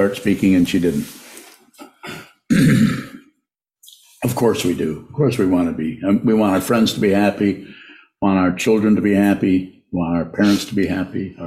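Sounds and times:
speech: 0.0 - 1.2, 4.2 - 11.4
woman clearing her throat: 1.8 - 3.2.

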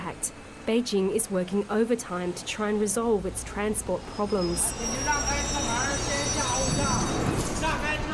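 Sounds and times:
speech: 0.1 - 7.0
subway train on the fifth subway line in Beijing rumbling: 1.3 - 8.1
subway train thin high metallic whine: 3.2 - 8.1.

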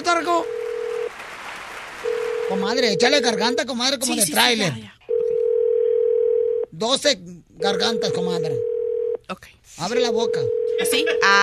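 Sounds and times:
speech: 0.1 - 0.6, 2.5 - 4.9, 6.8 - 8.7, 9.3 - 11.4
telephone dial tone while calling: 0.4 - 1.1, 5.1 - 6.7, 8.6 - 9.2, 10.5 - 10.9.

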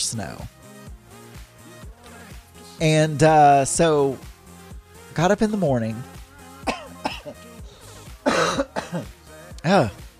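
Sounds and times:
speech: 0.0 - 0.6, 2.8 - 4.3, 5.2 - 6.2, 8.4 - 10.0
person coughing and clearing their throat: 6.6 - 7.4, 8.2 - 9.1.

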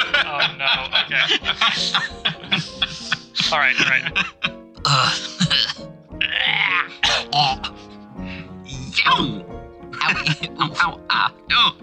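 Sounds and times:
laughter: 0.0 - 4.6, 9.9 - 11.8
speech: 0.5 - 7.6, 10.1 - 11.8
person coughing: 3.0 - 5.8
person clearing throat: 4.4 - 7.6.

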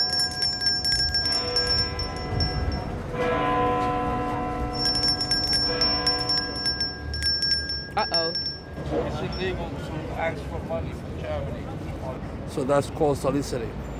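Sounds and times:
large bell tolling: 0.0 - 9.7
speech: 9.3 - 11.8, 12.5 - 13.8.

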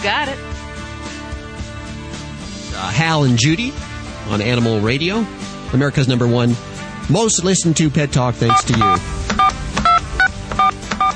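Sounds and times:
speech: 0.0 - 0.7, 2.8 - 9.4
telephone keypad dialing tones: 8.5 - 11.1.

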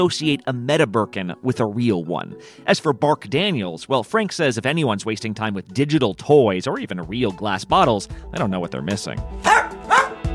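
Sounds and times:
speech: 0.0 - 9.9
dog barking: 9.4 - 10.2.

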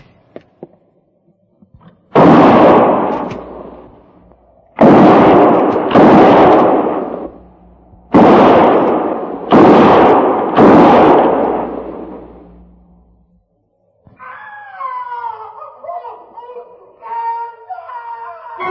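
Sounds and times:
gunfire between the trees: 2.1 - 12.9.

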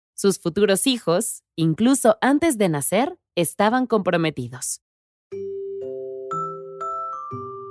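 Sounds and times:
speech: 0.2 - 5.4
school bell chiming a short melody of clear ringing tones: 5.3 - 7.6.

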